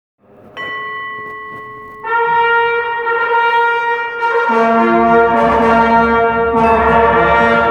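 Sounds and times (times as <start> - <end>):
fanfare: 2.0 - 7.6.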